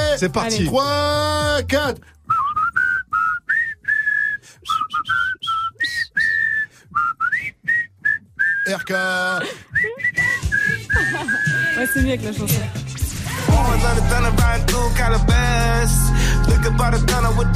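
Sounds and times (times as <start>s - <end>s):
speech: 0.2s - 2.2s, 8.7s - 9.9s, 10.9s - 12.9s, 13.6s - 17.5s
group whistling a tune in unison: 2.2s - 12.6s
noisy laughing burst: 9.4s - 12.1s.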